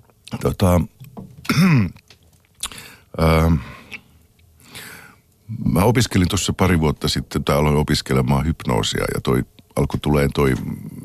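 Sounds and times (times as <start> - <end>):
speech: 0.4 - 2.0, 3.2 - 3.7, 5.5 - 11.0
person clearing throat: 1.4 - 2.0
person coughing in short rough bursts: 1.4 - 2.0.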